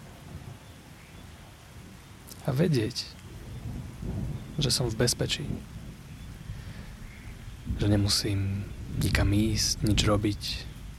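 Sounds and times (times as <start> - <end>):
steady rain hissing: 0.0 - 10.9
speech: 2.4 - 3.2, 4.6 - 5.8, 7.7 - 10.7
low thunder rumbles: 3.2 - 10.9.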